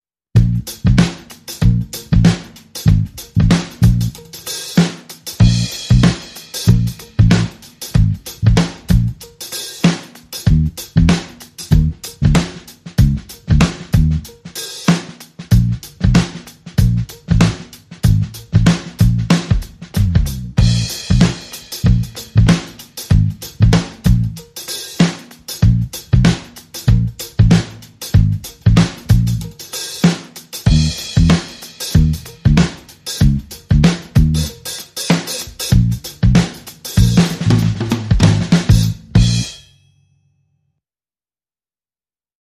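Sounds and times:
bass: 0:00.3 - 0:14.6, 0:15.4 - 0:29.9, 0:30.6 - 0:39.6
funk drums: 0:00.3 - 0:39.6.

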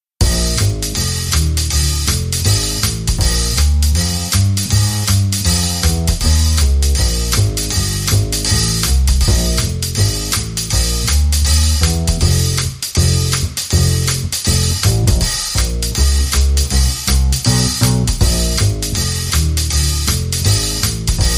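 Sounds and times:
drum and bass music: 0:00.2 - 0:21.3.

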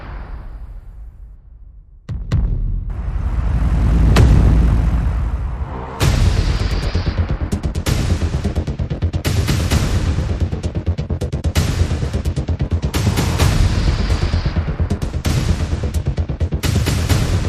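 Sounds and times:
percussion: 0:02.1 - 0:17.4
pulses: 0:02.9 - 0:07.9.

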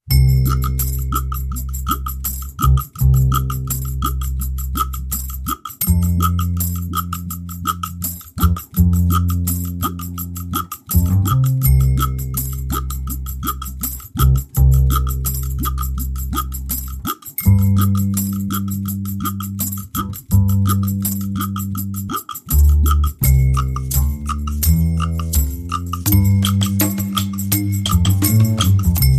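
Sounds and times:
drum and bass music mix: 0:00.4 - 0:29.1.

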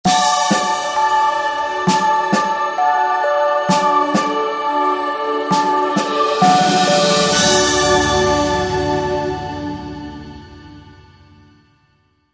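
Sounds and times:
drum piece: 0:00.0 - 0:03.0, 0:03.7 - 0:04.5, 0:05.5 - 0:11.2.

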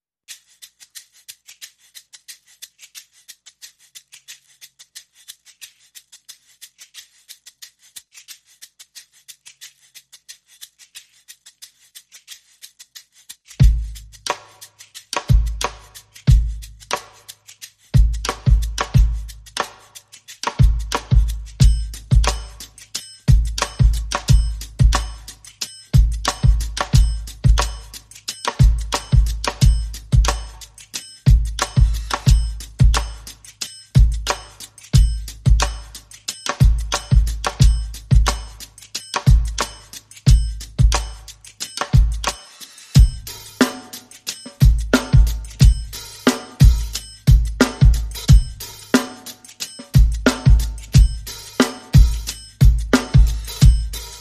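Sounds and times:
percussion: 0:00.2 - 0:54.1
drums: 0:13.5 - 0:17.3, 0:17.9 - 0:54.1.

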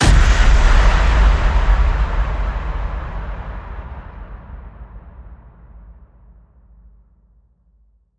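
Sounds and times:
big hit: 0:00.0 - 0:06.3.

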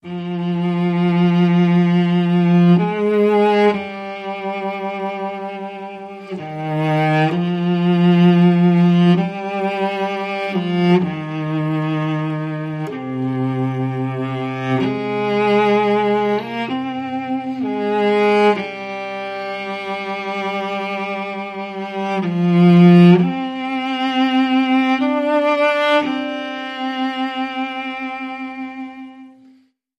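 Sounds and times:
gentle intimate flowing cello: 0:00.0 - 0:29.8.

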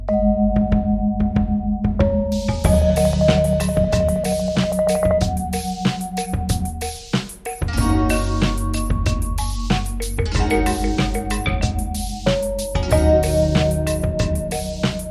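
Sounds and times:
groovy balafon solo: 0:00.2 - 0:15.0.

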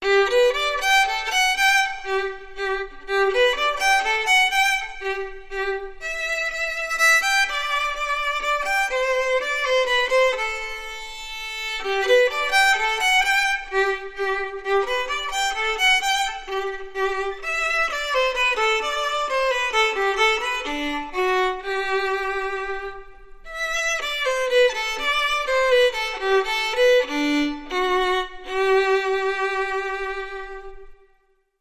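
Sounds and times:
classical violin solo: 0:00.0 - 0:31.5.

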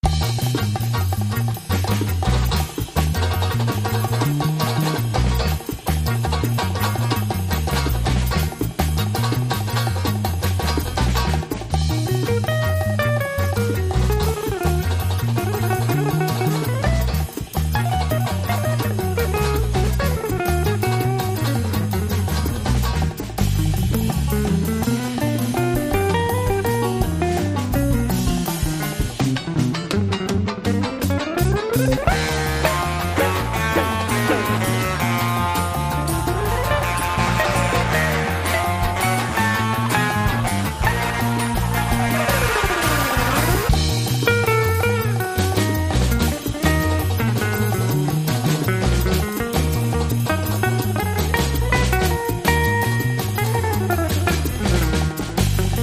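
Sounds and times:
light jazz surf guitar solo: 0:00.0 - 0:55.8.

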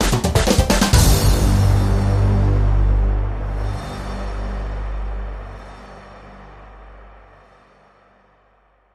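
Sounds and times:
hit and hold musical sting: 0:01.0 - 0:05.4.

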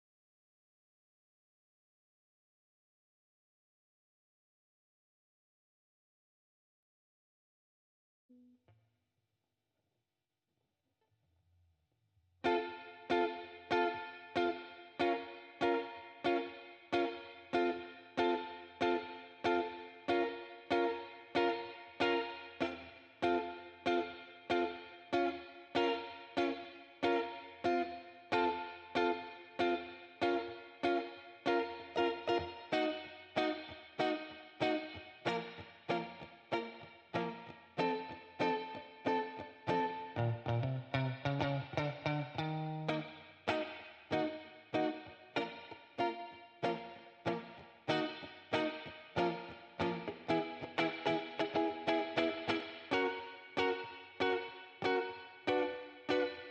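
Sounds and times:
clean electric guitar: 0:12.4 - 0:56.4.

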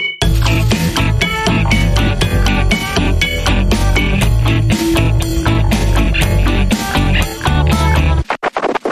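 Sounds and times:
reversed reggae bumper music: 0:00.2 - 0:08.8.

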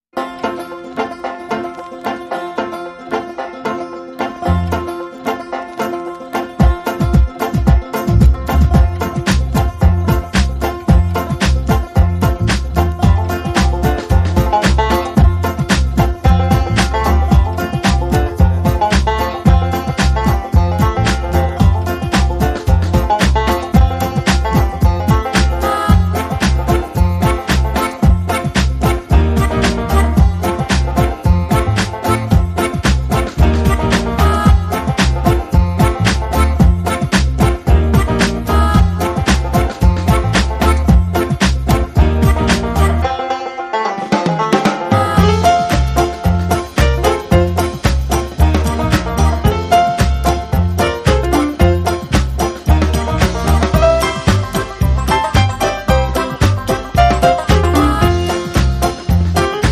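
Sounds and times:
banjo: 0:00.0 - 0:59.6.

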